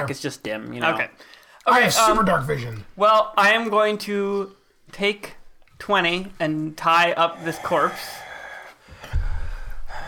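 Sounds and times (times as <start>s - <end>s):
speech: 0.0s - 8.2s
creature's heavy rasping breath: 7.3s - 10.0s.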